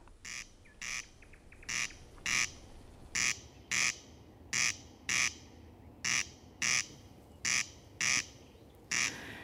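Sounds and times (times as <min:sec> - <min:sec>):
corncrake giving a dry rasping double crex call: 0:00.2 - 0:02.6, 0:03.2 - 0:09.4.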